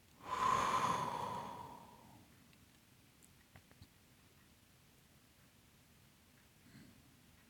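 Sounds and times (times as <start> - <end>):
deep breath in through the nose and out through the mouth: 0.2 - 2.2.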